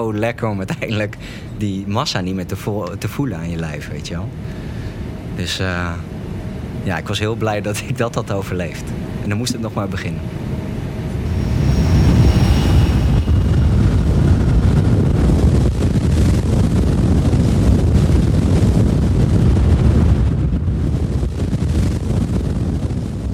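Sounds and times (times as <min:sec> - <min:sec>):
speech: 0:00.0 - 0:04.7, 0:05.4 - 0:06.1, 0:06.8 - 0:10.5
loud steady airplane engine drone during skydive jump: 0:04.3 - 0:06.8, 0:08.2 - 0:18.5
buffeting wind noise: 0:08.8 - 0:23.3.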